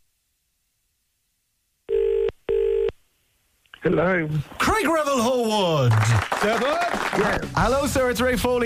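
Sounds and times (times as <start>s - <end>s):
double-burst telephone ringback tone on a call to Dublin, Ireland: 1.9s - 2.9s
speech: 3.8s - 8.6s.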